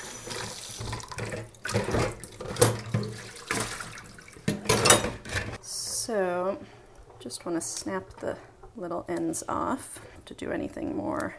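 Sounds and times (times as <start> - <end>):
tap water running into a sink: 0.0 - 4.9
speech: 6.1 - 11.3.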